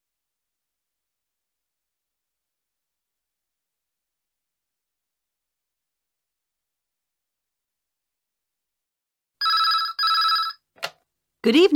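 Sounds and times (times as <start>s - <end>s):
telephone ringing with bright buzzing trills: 9.4s - 10.7s
speech: 11.4s - 11.7s.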